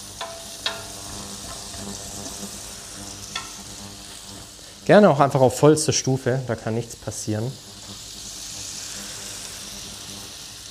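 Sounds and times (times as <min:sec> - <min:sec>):
spices toasting in a pan: 0:00.0 - 0:10.6
spoon clicking on pan while stirring: 0:00.1 - 0:01.0, 0:03.3 - 0:03.6
speech: 0:04.9 - 0:07.7.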